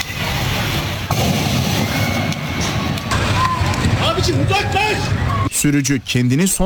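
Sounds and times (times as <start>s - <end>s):
steady loud roar of a burning car: 0.0s - 5.4s
sharp explosion bang from a burning car: 0.6s - 4.3s
speech: 5.6s - 6.6s.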